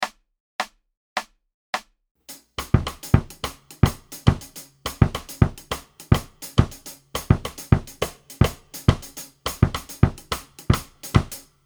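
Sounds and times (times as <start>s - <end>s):
mambo music: 2.4s - 11.4s.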